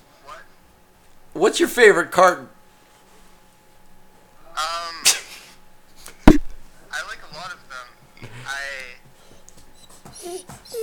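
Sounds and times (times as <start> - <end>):
speech: 1.4 - 2.6
dog whimpering with a high thin whine: 9.7 - 10.8.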